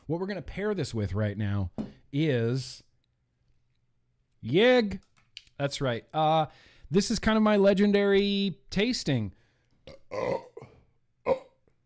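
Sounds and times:
speech: 0.1s - 2.9s, 4.4s - 9.4s, 10.1s - 10.5s
person burping: 9.8s - 11.7s.

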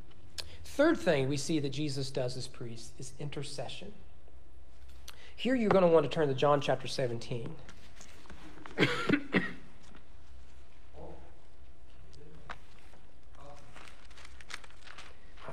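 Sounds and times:
speech: 0.8s - 4.1s, 5.4s - 7.7s, 8.8s - 9.2s
person coughing and clearing their throat: 8.7s - 9.8s.

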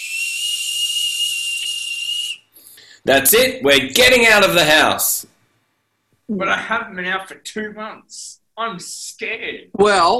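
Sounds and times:
kettle whistling: 0.0s - 2.5s
speech: 3.0s - 5.3s, 6.3s - 10.1s.

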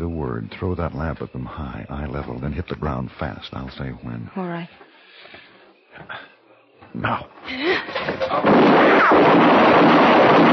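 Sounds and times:
speech: 0.2s - 5.4s, 6.9s - 10.5s
gunshot during a lamp-lit nighttime standoff: 8.2s - 10.5s.

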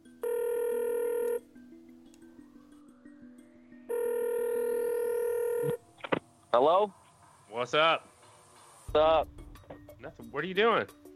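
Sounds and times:
telephone ringing as a call is placed: 0.0s - 1.4s, 3.9s - 5.8s
speech: 6.5s - 8.1s, 8.9s - 9.4s, 10.0s - 11.0s.

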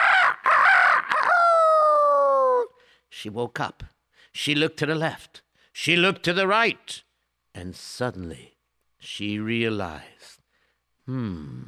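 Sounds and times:
rooster crowing in the morning: 0.0s - 2.7s
speech: 3.2s - 10.4s, 11.1s - 11.6s.

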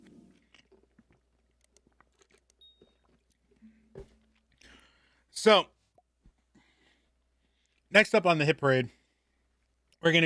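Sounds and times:
wet chewing with crunchy clicks and smacks: 0.3s - 3.6s
speech: 5.4s - 5.7s, 8.0s - 9.0s, 10.0s - 10.2s.

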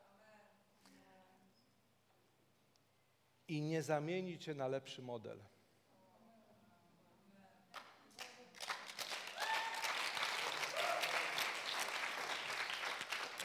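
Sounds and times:
speech: 3.5s - 5.6s
crowd applause with dense clapping: 8.6s - 13.4s.

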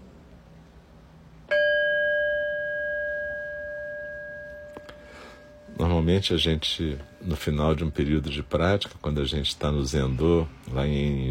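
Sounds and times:
meditation bell struck and ringing: 1.5s - 9.0s
speech: 5.8s - 11.2s.

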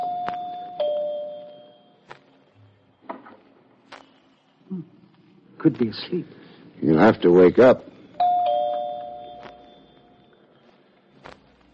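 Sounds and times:
house doorbell two-note ding-dong chime: 0.0s - 2.0s, 8.2s - 10.0s
speech: 4.7s - 5.0s, 5.6s - 7.9s.

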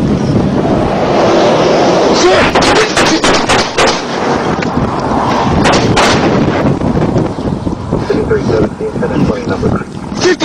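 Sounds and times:
heavy wind buffeting and rumbling noise: 0.0s - 10.4s
volley of gunshots fired during a traffic stop: 2.3s - 4.3s, 5.6s - 6.6s
faint voices: 8.0s - 10.4s.

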